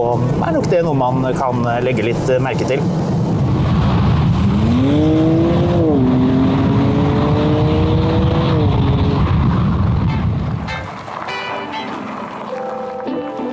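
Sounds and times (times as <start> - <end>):
speech: 0.0 - 3.2
sports car engine droning while driving: 2.8 - 13.1.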